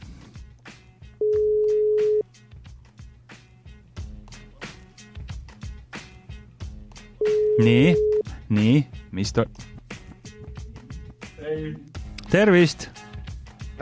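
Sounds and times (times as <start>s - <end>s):
continuous music: 0.0s - 13.8s
telephone ringback tone while an outgoing call is placed: 1.2s - 2.2s, 7.2s - 8.2s
speech: 7.6s - 9.7s, 11.6s - 13.0s.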